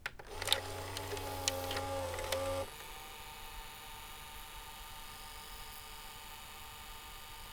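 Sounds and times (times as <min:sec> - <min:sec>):
broadcast VTR tape playback on VHS: 0:00.0 - 0:02.9.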